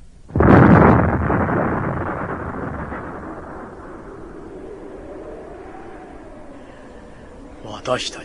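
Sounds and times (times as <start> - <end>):
explosive charge set off by lit fuse exploding in a dug trench: 0.3 - 4.5
speech: 7.9 - 8.2.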